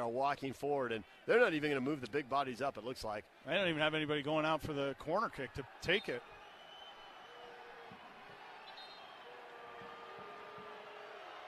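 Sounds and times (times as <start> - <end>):
speech: 0.0 - 6.4
large stadium crowd booing at a soccer match: 4.4 - 11.4.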